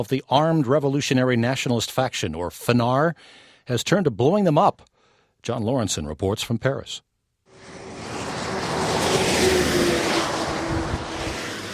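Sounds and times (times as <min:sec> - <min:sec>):
speech: 0:00.0 - 0:07.8
car engine humming while slowing to enter a village: 0:07.5 - 0:11.7.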